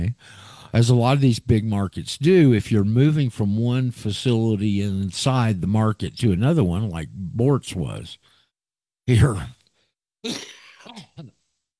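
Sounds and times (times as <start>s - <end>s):
speech: 0.1s - 8.3s, 9.1s - 9.6s, 10.2s - 11.4s
person clearing phlegm from the throat: 10.2s - 11.4s.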